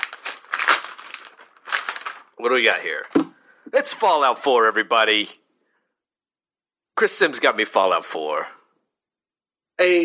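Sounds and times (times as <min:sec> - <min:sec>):
wrapping paper rustling and crinkling as a gift is torn open: 0:00.0 - 0:03.2
speech: 0:02.4 - 0:05.4, 0:07.0 - 0:08.6, 0:09.8 - 0:10.0.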